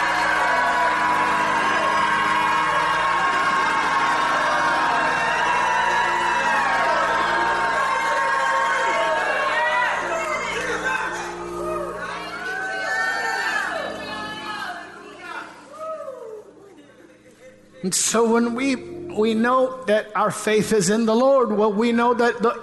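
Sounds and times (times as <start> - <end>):
large audience shouting and whooping: 0.0 - 16.6
speech: 17.9 - 22.6.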